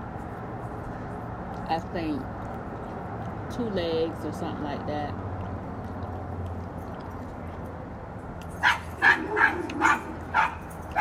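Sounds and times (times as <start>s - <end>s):
speech: 1.7s - 2.5s, 3.5s - 5.2s
dog barking with sharp yaps: 8.6s - 10.9s.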